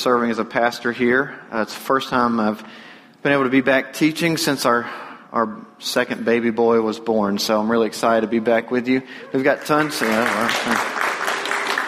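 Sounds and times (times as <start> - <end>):
speech: 0.0 - 11.1
crowd applauding: 9.4 - 11.8.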